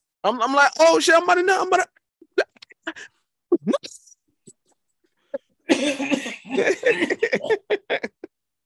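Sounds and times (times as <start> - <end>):
speech: 0.2 - 4.0, 5.8 - 8.2
smoker's cough: 5.4 - 7.9.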